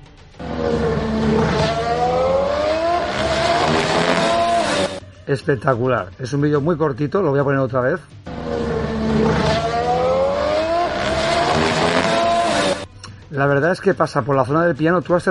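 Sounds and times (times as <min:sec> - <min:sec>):
Red Bull Formula One car engine whine passing over a kerb: 0:00.4 - 0:05.0, 0:08.3 - 0:12.9
speech: 0:05.3 - 0:08.2, 0:09.2 - 0:09.7, 0:13.3 - 0:15.2.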